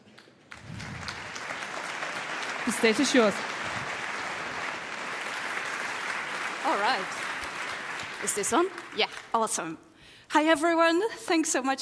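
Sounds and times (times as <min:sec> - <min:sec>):
audience applause at a talk: 0:00.4 - 0:09.4
speech: 0:02.7 - 0:03.5, 0:06.9 - 0:07.2, 0:08.2 - 0:11.8.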